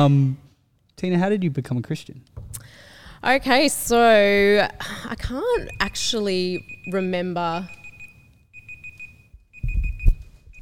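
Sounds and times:
speech: 0.0 - 0.4, 1.0 - 7.8
timer alarm beeping: 5.2 - 10.6.

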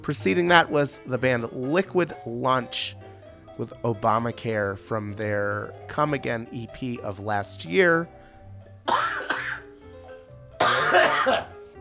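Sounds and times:
speech: 0.0 - 3.0, 3.6 - 8.2
person coughing: 8.9 - 9.6, 10.6 - 11.5.

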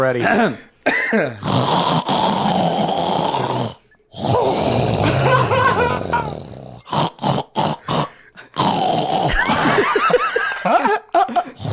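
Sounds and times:
person imitating heavy sleep apnea snoring: 1.3 - 9.8, 11.5 - 11.7
laughter: 5.0 - 6.4, 9.3 - 11.6.

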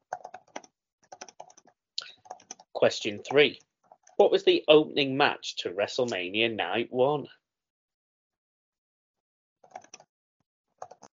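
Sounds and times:
typing on a Surface Pro laptop keyboard: 0.0 - 2.7, 9.6 - 10.1, 10.8 - 11.1
speech: 2.8 - 7.4.

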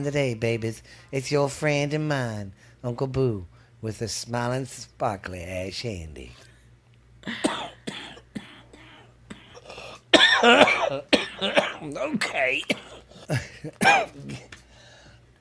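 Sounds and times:
speech: 0.0 - 6.5, 7.2 - 7.8, 10.4 - 14.5
low steady hum: 0.0 - 15.3
man coughing: 7.2 - 14.6.

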